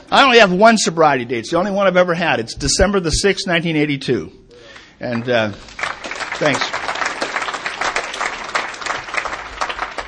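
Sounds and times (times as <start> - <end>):
speech: 0.1 - 4.4, 5.0 - 5.8, 6.4 - 6.8
room full of people applauding: 4.8 - 10.0.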